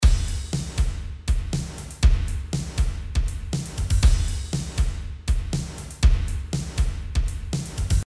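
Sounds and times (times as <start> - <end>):
drum loop: 0.0 - 8.0.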